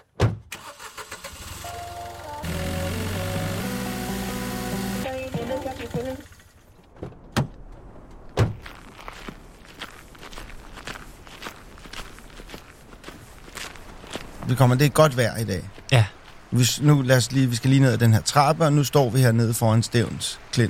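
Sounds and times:
sharp thunks: 0.0s - 0.5s, 6.9s - 8.7s
car engine starting and running loudly: 1.1s - 6.7s
footsteps: 6.8s - 14.7s
speech: 14.5s - 20.6s.

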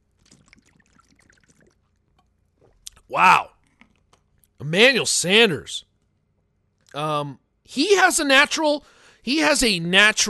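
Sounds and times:
person gulping a swig of water: 0.0s - 4.6s
speech: 3.1s - 3.5s, 4.6s - 5.9s, 6.9s - 10.2s.

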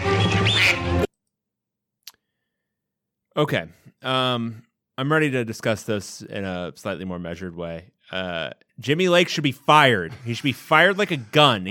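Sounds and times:
loud nasal duck quack: 0.2s - 1.1s
speech: 3.4s - 11.6s.

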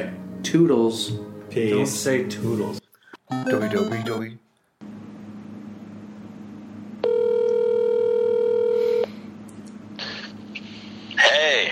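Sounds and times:
speech: 0.0s - 4.9s
steady phone ringback tone: 7.0s - 9.1s.

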